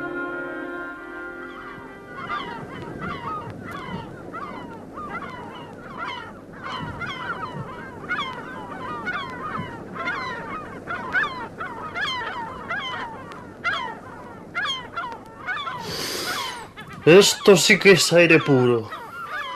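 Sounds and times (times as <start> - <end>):
flock of seagulls calling on a beach: 0.0 - 19.5
steady wash of noise: 0.0 - 19.5
speech: 17.1 - 19.0.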